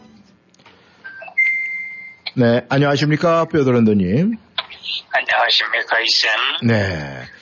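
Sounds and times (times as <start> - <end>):
electronic phone ringtone beeping: 1.1 - 2.3
speech: 2.4 - 7.3.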